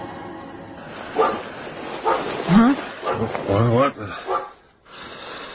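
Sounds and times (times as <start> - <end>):
dog indoors barking at someone in the yard: 1.2 - 2.3, 3.0 - 3.5, 4.2 - 4.6.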